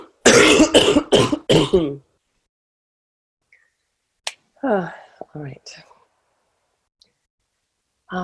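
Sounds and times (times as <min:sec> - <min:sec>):
person coughing harshly: 0:00.2 - 0:02.0
speech: 0:04.6 - 0:05.9.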